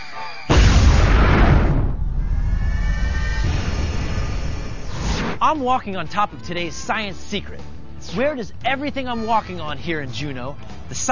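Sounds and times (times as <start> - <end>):
loud boom from glacier ice calving: 0.5 - 5.3
speech: 5.5 - 11.1.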